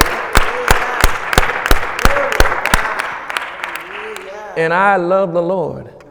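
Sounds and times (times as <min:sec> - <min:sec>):
audience clapping in a steady driving rhythm: 0:00.0 - 0:04.6
scattered applause: 0:00.0 - 0:04.6
loud dense crowd noise: 0:00.0 - 0:06.0
speech: 0:04.6 - 0:06.0.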